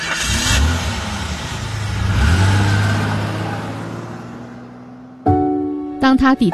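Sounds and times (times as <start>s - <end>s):
car engine revving as car drives off: 0.0s - 5.9s
speech: 6.0s - 6.5s.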